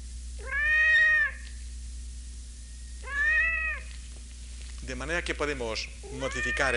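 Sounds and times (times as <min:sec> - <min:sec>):
low hum: 0:00.0 - 0:06.7
enraged cat yowling under brain stimulation: 0:00.4 - 0:01.4, 0:03.0 - 0:03.9, 0:06.1 - 0:06.7
speech: 0:04.9 - 0:06.7.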